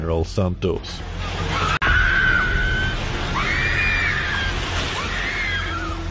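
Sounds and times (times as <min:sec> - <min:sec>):
speech: 0:00.1 - 0:01.8
heavy rumbling roar of a building collapsing: 0:01.0 - 0:06.0
bystanders screaming as a building collapses: 0:01.2 - 0:06.0.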